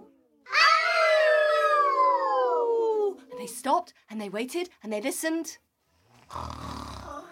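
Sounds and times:
person imitating a hyena howling loudly: 0:00.5 - 0:03.2
speech: 0:03.6 - 0:05.6, 0:06.3 - 0:06.7.

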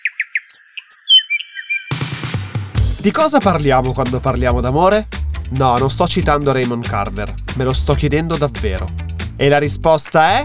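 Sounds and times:
canary chirping and trilling: 0:00.0 - 0:02.0
speech: 0:03.0 - 0:10.4.

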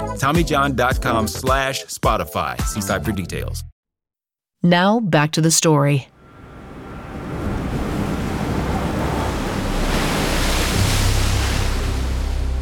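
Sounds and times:
speech: 0:00.2 - 0:03.7, 0:04.6 - 0:06.2
surf washing and breaking on a shore: 0:06.2 - 0:12.6
wind rumbling and buffeting: 0:06.2 - 0:12.6.

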